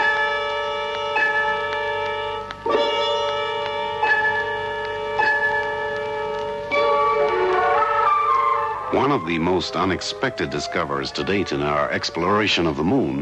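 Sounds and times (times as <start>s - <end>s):
large bell tolling: 0.0s - 10.2s
speech: 9.0s - 13.2s.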